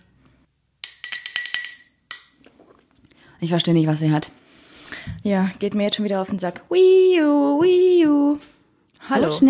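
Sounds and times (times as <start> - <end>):
metal straw clinking against a glass: 0.8 - 2.5
speech: 3.4 - 4.4, 5.2 - 8.5, 9.1 - 9.4.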